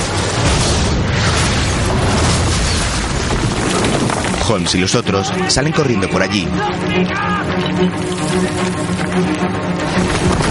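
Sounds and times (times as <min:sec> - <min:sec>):
cannon shot blasting a hole in a wall after passing through a railway wagon: 0:00.0 - 0:04.4
speech: 0:04.5 - 0:09.5.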